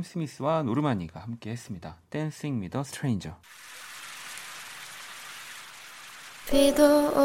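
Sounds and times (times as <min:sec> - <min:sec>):
speech: 0:00.0 - 0:03.9, 0:06.5 - 0:07.2
steady rain pouring in a radio station jingle: 0:03.5 - 0:07.2.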